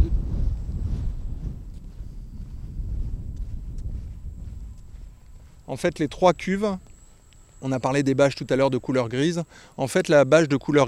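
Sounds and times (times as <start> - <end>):
steady rumbling wind buffeting an outdoor microphone: 0.0 - 6.5
speech: 5.7 - 6.9, 7.6 - 10.8.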